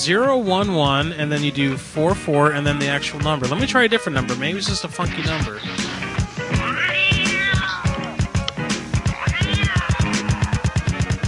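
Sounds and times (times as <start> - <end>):
speech: 0.0 - 5.9
rapid rhythmic thumping beat: 2.7 - 11.2
cat meowing: 6.5 - 8.1, 9.1 - 10.8.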